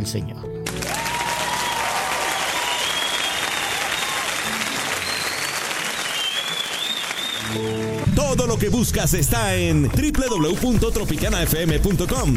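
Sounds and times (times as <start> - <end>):
speech: 0.0 - 0.6, 7.4 - 12.3
applause from a large crowd: 0.6 - 8.1
faint whistles and cheers: 0.8 - 8.1.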